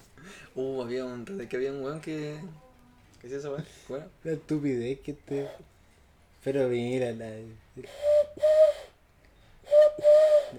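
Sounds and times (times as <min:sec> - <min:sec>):
speech: 0:00.6 - 0:02.6, 0:03.2 - 0:05.7, 0:06.4 - 0:08.5
person whistling owl-like hoots: 0:07.8 - 0:09.0, 0:09.6 - 0:10.5.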